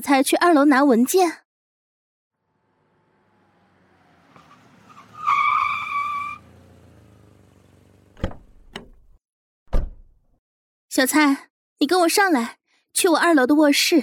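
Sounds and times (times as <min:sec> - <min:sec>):
speech: 0:00.0 - 0:01.4, 0:11.0 - 0:14.0
door creaking open: 0:08.2 - 0:10.2.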